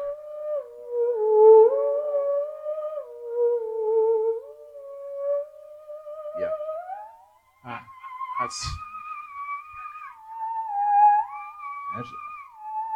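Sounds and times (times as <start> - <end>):
theremin playing a film theme: 0.0 - 12.9
speech: 8.5 - 8.9, 12.0 - 12.2.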